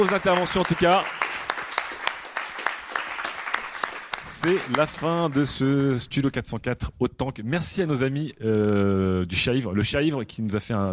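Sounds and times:
speech: 0:00.0 - 0:01.2, 0:04.4 - 0:10.9
audience applause after a talk: 0:00.0 - 0:05.6.

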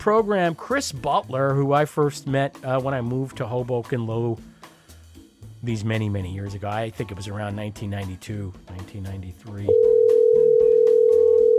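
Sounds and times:
speech: 0:00.0 - 0:04.5, 0:05.6 - 0:10.0
telephone dial tone: 0:09.7 - 0:11.5.

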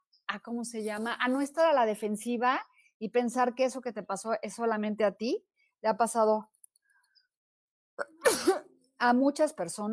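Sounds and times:
speech: 0:00.3 - 0:06.5, 0:09.0 - 0:09.9
sneeze: 0:08.0 - 0:08.8.

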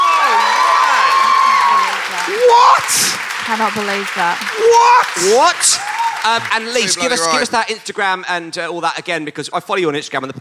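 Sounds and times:
many voices shouting and whooping: 0:00.0 - 0:03.2, 0:04.4 - 0:07.5
crowd cheering and applauding: 0:00.0 - 0:07.9
speech: 0:02.5 - 0:10.3.

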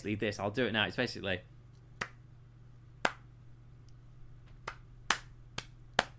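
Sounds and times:
speech: 0:00.0 - 0:01.6
faint low hum: 0:00.0 - 0:06.1
hands clapping to an irregular beat: 0:02.0 - 0:02.2, 0:03.0 - 0:03.3, 0:04.5 - 0:06.1.

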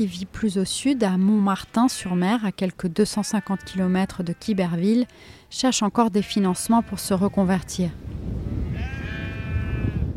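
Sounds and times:
speech: 0:00.0 - 0:08.1
black-headed salt-meadow sheep bleating on a windswept farm in Normandy, France: 0:01.6 - 0:05.2, 0:06.0 - 0:07.9, 0:08.6 - 0:10.1
outdoor rumble of wind on a windswept farm in Normandy, France: 0:06.5 - 0:10.1.

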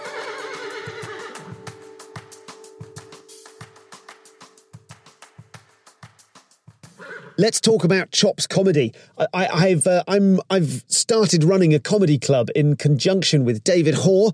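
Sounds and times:
horse neighing: 0:00.0 - 0:01.6, 0:06.9 - 0:07.4
speech: 0:07.4 - 0:14.3.

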